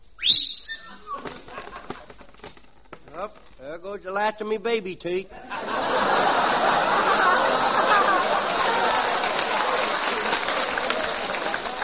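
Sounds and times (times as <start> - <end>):
person attempting a shrill whistle: 0.2 - 1.3
laughter: 0.9 - 2.2, 5.3 - 11.8
scattered rustling clatter: 1.2 - 3.6
speech: 3.2 - 6.4.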